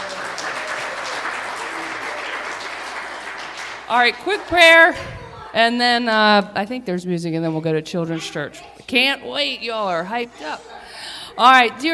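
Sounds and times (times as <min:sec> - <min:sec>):
audience clapping: 0:00.0 - 0:04.9
speech: 0:03.9 - 0:10.8, 0:11.4 - 0:11.9.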